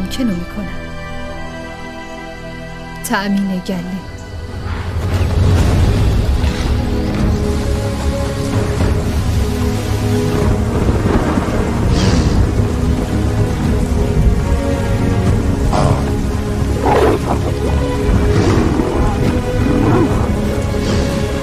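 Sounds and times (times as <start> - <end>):
speech: 0.2 - 0.8, 3.1 - 4.1
steady heavy rain pouring down: 4.3 - 21.4
deep rumbling thunder with a bright crack: 4.4 - 21.4.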